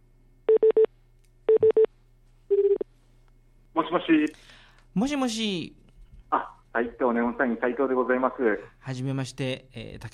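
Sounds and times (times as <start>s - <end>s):
faint steady hum: 0.0s - 10.1s
pulsing buzzing telephone tone as a call is placed: 0.5s - 0.9s, 2.5s - 2.8s
telephone keypad beeps: 1.5s - 1.9s
speech: 3.9s - 10.1s.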